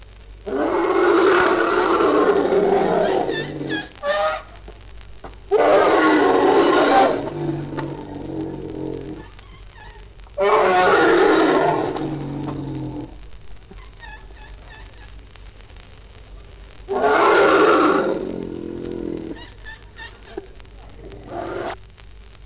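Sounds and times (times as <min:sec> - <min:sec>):
elephants trumpeting: 0:00.5 - 0:04.6, 0:05.5 - 0:13.1, 0:16.9 - 0:21.8.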